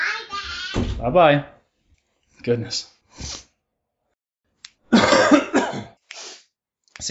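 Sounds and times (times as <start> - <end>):
speech: 0.7 - 1.6, 2.4 - 3.4
raspy coughs turned away from microphone: 4.9 - 6.0.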